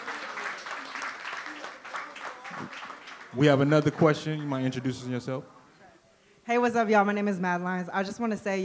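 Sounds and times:
audience applause: 0.0 - 5.0
speech: 2.6 - 5.6, 6.5 - 8.6.

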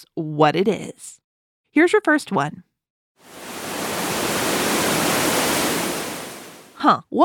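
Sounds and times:
speech: 0.0 - 1.2, 1.8 - 3.4, 6.8 - 7.2
waterfall rushing: 3.3 - 6.8.

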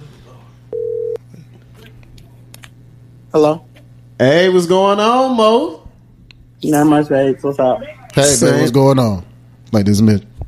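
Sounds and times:
faint low hum: 0.0 - 10.4
electronic ringing tone of an outgoing phone call: 0.7 - 1.2
speech: 3.3 - 5.8, 6.6 - 10.3.

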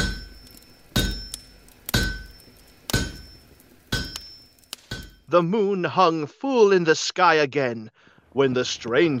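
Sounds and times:
hammer clanging on anvil: 0.0 - 5.3
speech: 5.3 - 9.1.

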